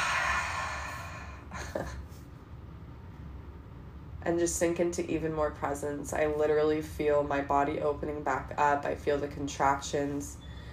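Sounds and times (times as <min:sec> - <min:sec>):
deep inhale through the nose and full exhale through the mouth: 0:00.0 - 0:01.5, 0:10.4 - 0:10.7
speech: 0:04.2 - 0:10.4.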